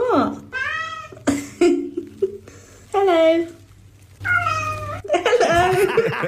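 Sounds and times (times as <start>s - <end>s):
faint hum: 0.0s - 6.2s
speech: 0.2s - 0.5s
cat meowing like a spoken hello: 0.5s - 1.2s, 4.2s - 5.1s
laughter: 5.1s - 6.2s.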